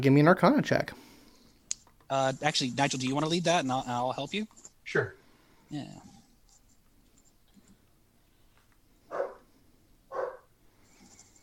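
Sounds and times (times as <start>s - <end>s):
speech: 0.0s - 1.1s, 2.1s - 6.1s
small puppy barking: 9.1s - 9.4s, 10.1s - 10.5s.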